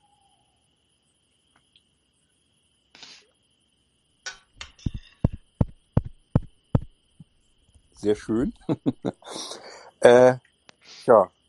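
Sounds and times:
faint constant hum: 0.0s - 11.4s
firm knocking on a house's front door with a window: 4.9s - 6.9s
speech: 8.0s - 10.5s, 11.1s - 11.4s
laughter: 8.5s - 9.6s.

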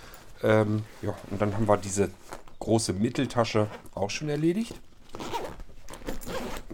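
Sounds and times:
speech: 0.4s - 4.9s
sturdy zipper on a backpack pocket being pulled closed: 5.1s - 6.7s.

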